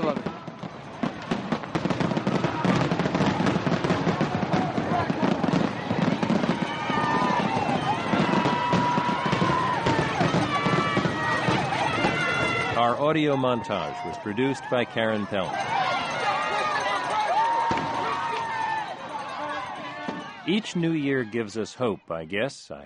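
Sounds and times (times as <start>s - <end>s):
fireworks whistling streaks: 0.0s - 13.0s, 15.3s - 20.7s
fireworks crackling and banging: 0.0s - 20.8s
crowd murmuring: 0.0s - 22.8s
voices calling out: 1.2s - 22.8s
speech: 13.1s - 15.8s, 20.5s - 22.8s.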